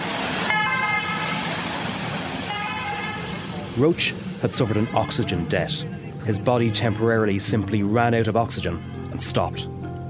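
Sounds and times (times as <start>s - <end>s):
old-style two-tone ambulance klaxon: 0.0s - 1.7s, 2.4s - 9.6s
speech: 3.8s - 9.8s.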